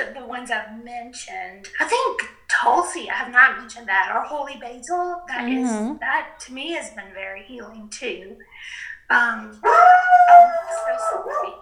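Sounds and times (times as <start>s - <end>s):
speech: 0.0s - 11.6s
dog howling: 9.6s - 11.6s.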